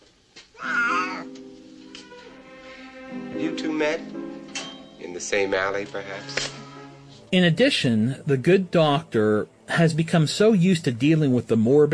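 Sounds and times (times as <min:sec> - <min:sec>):
cat drawn-out meow: 0:00.5 - 0:01.4
speech: 0:03.4 - 0:04.3, 0:05.1 - 0:06.6, 0:07.3 - 0:11.9.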